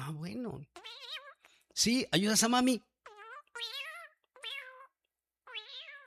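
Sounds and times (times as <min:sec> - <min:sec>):
speech: 0:00.1 - 0:00.9, 0:01.8 - 0:02.9
cat meowing: 0:00.6 - 0:01.5, 0:03.0 - 0:06.0.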